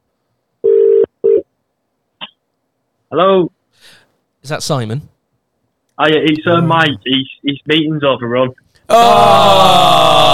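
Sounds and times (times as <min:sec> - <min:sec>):
outgoing phone call ringing tone: 0:00.6 - 0:01.4
speech: 0:03.1 - 0:05.1, 0:06.0 - 0:10.3.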